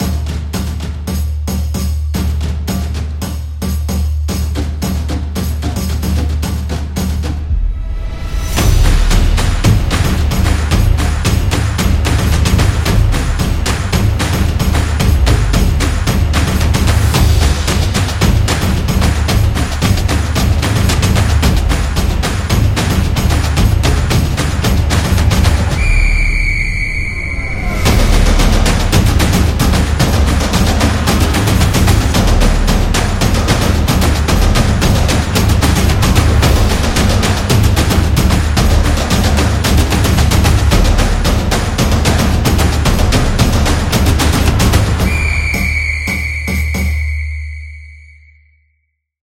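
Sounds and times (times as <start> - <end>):
Latin samba drums: 0.0 - 47.9.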